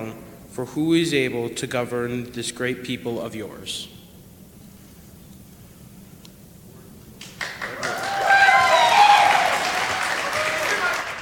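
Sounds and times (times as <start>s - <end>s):
speech: 0.1s - 4.0s
crowd applauding: 7.2s - 11.2s
excited shouts and whoops: 7.7s - 11.2s.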